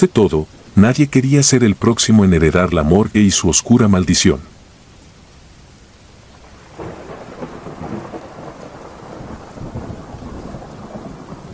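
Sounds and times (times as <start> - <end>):
speech: 0.0 - 4.6
heavy rain drumming on rooftops: 0.0 - 11.5
deep rolling thunder: 6.4 - 11.5.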